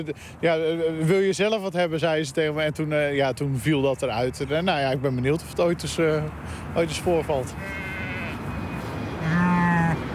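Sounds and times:
speech: 0.0 - 7.9
sheep bleating on a farm in Rotterdam: 7.5 - 10.0.

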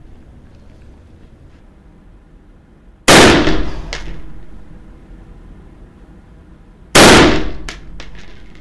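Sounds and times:
loaded rifle shots: 3.1 - 4.4, 7.0 - 8.4.

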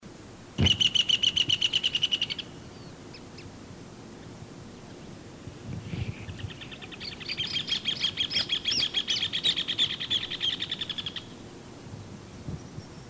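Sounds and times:
bird song trills of bright repeated notes: 0.6 - 3.5, 6.0 - 11.4, 12.3 - 13.0.

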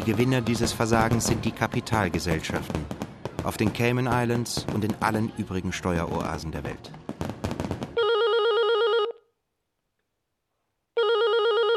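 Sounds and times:
speech: 0.0 - 7.0
telephone ringing for an incoming call: 8.0 - 9.2, 11.0 - 11.7.

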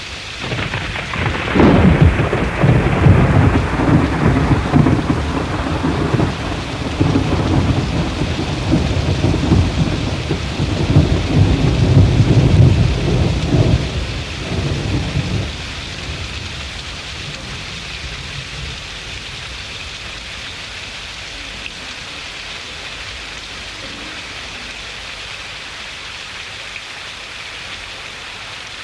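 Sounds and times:
steady rain: 0.0 - 28.8
heavy rolling thunder: 0.4 - 18.8.

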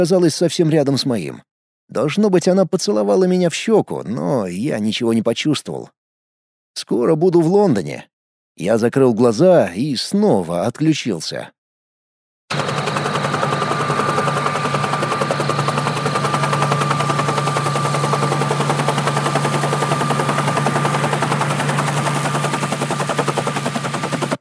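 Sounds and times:
speech: 0.0 - 6.0, 6.8 - 11.6
approaching helicopter rotor roar: 12.5 - 24.3.

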